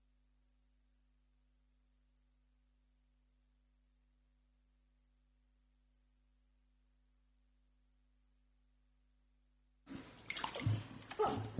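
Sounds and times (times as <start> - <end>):
person wading into a heated baptismal pool: 9.9 - 11.5.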